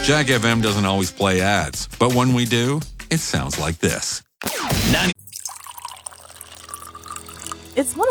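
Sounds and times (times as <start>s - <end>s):
speech: 0.1s - 4.2s, 4.8s - 5.2s
water gushing from a turned-on tap: 5.2s - 8.0s.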